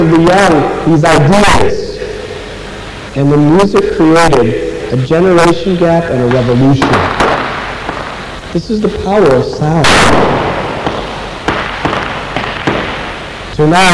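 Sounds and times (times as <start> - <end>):
speech: 0.1 - 1.9, 3.1 - 7.3, 8.5 - 10.4, 13.6 - 13.9
firecracker-like bangs: 6.0 - 13.9.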